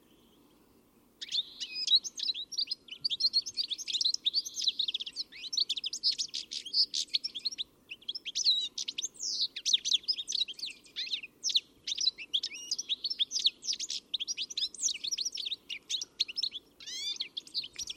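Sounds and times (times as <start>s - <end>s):
birds chirping and twittering in a dense chorus: 0.0s - 17.9s.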